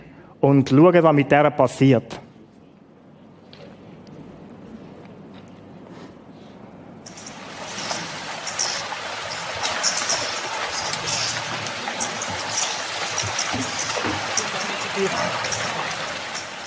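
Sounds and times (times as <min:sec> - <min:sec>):
speech: 0:00.4 - 0:02.2
flowing river water: 0:07.0 - 0:16.6
splashes and sloshing of buffalo herd crossing a river: 0:07.1 - 0:16.6.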